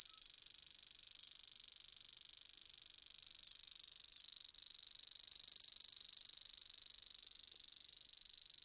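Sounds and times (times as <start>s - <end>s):
common grasshopper warbler reeling song: 0.0s - 8.6s.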